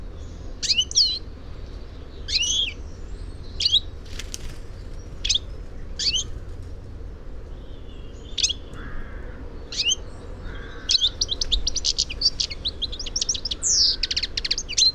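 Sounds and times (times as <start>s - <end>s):
low background hum: 0.0s - 14.9s
European goldfinch Carduelis carduelis twittering: 0.2s - 1.3s, 2.2s - 2.8s, 3.4s - 3.9s, 5.2s - 6.3s, 8.0s - 9.0s, 9.7s - 14.9s.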